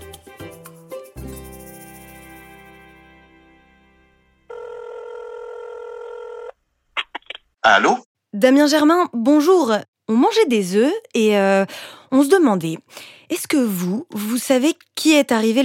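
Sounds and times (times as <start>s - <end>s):
telephone dialing tones: 4.5s - 6.5s
speech: 7.6s - 15.6s.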